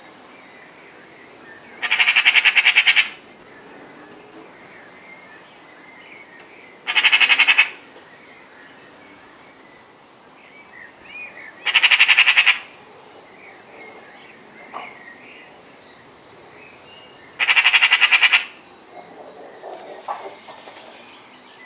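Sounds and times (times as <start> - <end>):
Pica pica Eurasian magpie rattling chatter calls: 1.8 - 3.2, 6.9 - 7.8, 11.6 - 12.7, 17.4 - 18.6.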